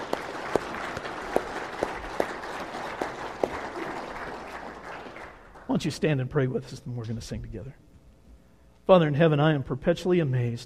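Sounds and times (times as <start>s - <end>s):
crowd of people applauding: 0.0s - 5.9s
speech: 5.7s - 7.9s, 8.9s - 10.6s.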